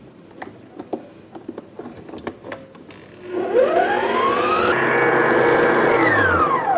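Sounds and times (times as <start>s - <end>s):
blender blending a dessert mixture with lemon juice: 3.1s - 6.7s.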